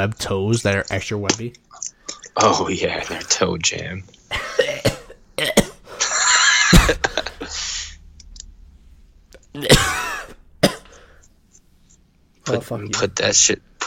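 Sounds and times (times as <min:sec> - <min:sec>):
speech: 0:00.0 - 0:04.7, 0:12.5 - 0:13.8
person coughing: 0:04.3 - 0:07.9, 0:09.6 - 0:11.2.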